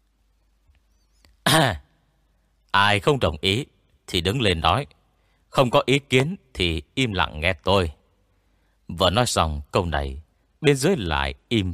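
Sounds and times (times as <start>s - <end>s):
faint click: 0.0s - 1.4s
man clearing his throat: 1.4s - 1.9s
speech: 1.6s - 1.8s, 2.8s - 8.0s, 8.9s - 11.7s.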